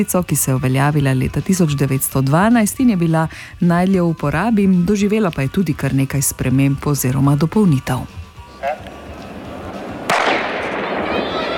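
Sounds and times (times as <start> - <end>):
speech: 0.0 - 8.2
gunshot fired into the air: 10.0 - 11.5.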